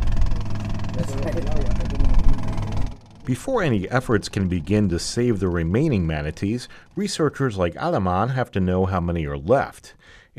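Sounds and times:
inboard motor of a John boat puttering on a river: 0:00.0 - 0:08.3
speech: 0:01.0 - 0:02.0, 0:03.3 - 0:10.3.

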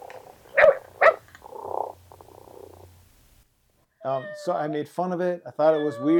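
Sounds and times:
robotic toy cat purring: 0:00.0 - 0:03.0
speech: 0:04.0 - 0:06.1.

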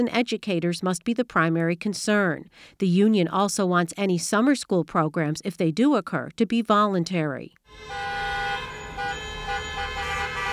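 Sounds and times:
speech: 0:00.0 - 0:08.3
car horns honked by protesters outside: 0:07.7 - 0:10.5
low rumble of outdoor traffic: 0:07.7 - 0:10.5.

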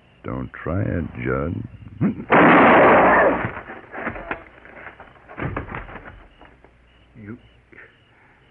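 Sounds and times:
speech: 0:00.2 - 0:03.6
gunshot: 0:02.3 - 0:04.4.

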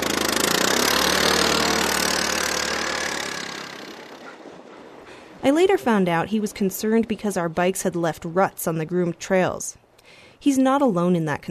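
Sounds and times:
snow trail grooming machine engine rumbling: 0:00.0 - 0:06.2
speech: 0:05.4 - 0:09.8, 0:10.4 - 0:11.4.

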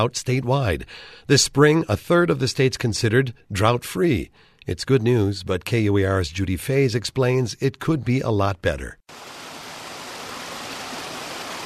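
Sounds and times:
speech: 0:00.0 - 0:09.4
water rushing in Red Butte Creek in Utah in mid-spring: 0:09.1 - 0:11.6.

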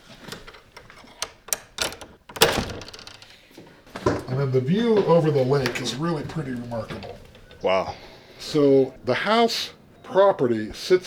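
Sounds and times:
skeleton key scraping and clicking in an old door lock: 0:00.0 - 0:03.5, 0:05.6 - 0:07.6
speech: 0:04.4 - 0:11.0.

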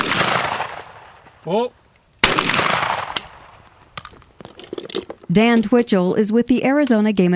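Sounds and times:
gunshots at clay targets on a shooting range: 0:00.0 - 0:01.4, 0:02.2 - 0:03.8
speech: 0:01.4 - 0:02.5, 0:05.3 - 0:07.3.

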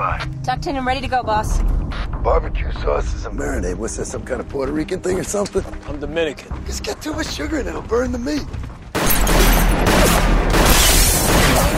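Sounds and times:
speech: 0:00.0 - 0:08.6
gunshots fired at police in a TV police drama: 0:09.0 - 0:11.7.

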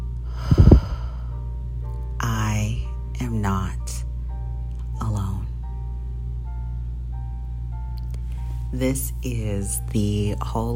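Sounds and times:
steady hum: 0:00.0 - 0:10.7
deep breath during a guided mindfulness exercise: 0:00.2 - 0:01.5
speech: 0:08.8 - 0:10.7.

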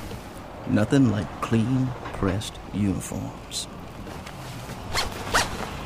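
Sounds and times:
speech: 0:00.7 - 0:03.7
man zipping up his pants: 0:04.9 - 0:05.7.

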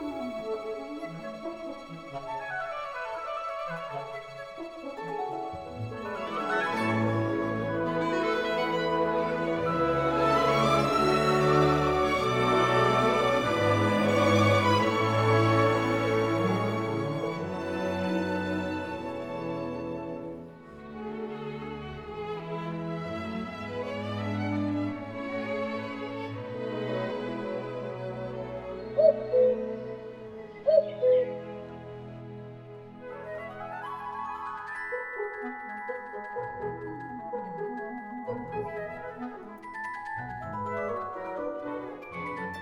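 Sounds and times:
orchestral music with strings and winds imitating birds: 0:00.0 - 0:42.6.

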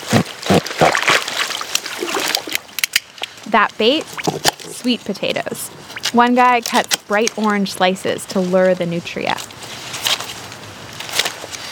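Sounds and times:
people wading and splashing through deep marsh water: 0:00.0 - 0:04.6
speech: 0:03.5 - 0:09.5.

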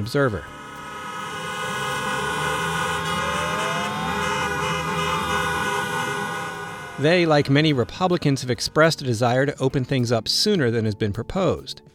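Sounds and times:
speech: 0:00.0 - 0:00.6, 0:07.0 - 0:11.9
car horns honking by protesters outside building: 0:00.5 - 0:08.4.

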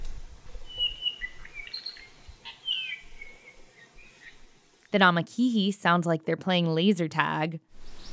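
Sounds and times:
Apapane singing whistled and chattering notes at Hakalau Forest National Wildlife Refuge, Hawaii: 0:00.6 - 0:04.4
speech: 0:04.9 - 0:07.8.

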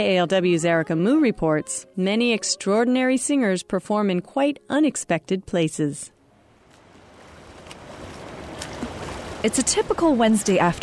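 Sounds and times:
speech: 0:00.0 - 0:06.2, 0:09.4 - 0:10.8
soft splashes in a swimming pool: 0:06.6 - 0:10.8
churning water from swimmers paddling in a swimming pool: 0:06.8 - 0:10.8.

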